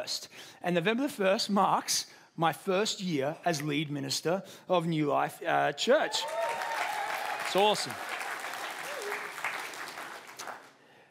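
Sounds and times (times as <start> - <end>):
speech: 0.0 - 6.6, 7.5 - 8.1
audience applauding: 6.1 - 10.8.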